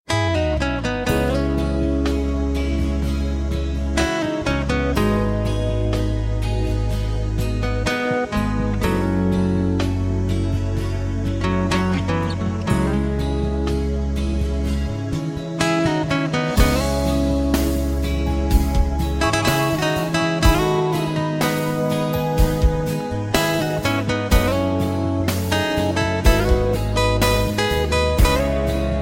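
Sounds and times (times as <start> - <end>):
soft guitar: 0.1 - 29.0.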